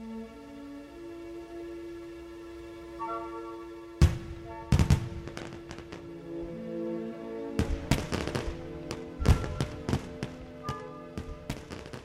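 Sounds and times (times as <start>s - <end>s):
fireworks exploding: 4.0s - 6.5s, 7.5s - 12.0s.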